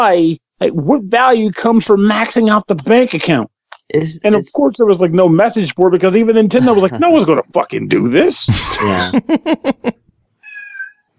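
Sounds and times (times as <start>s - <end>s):
speech: 0.0s - 10.0s
laughter: 6.5s - 7.5s, 8.5s - 9.9s
cat meowing: 10.5s - 11.0s.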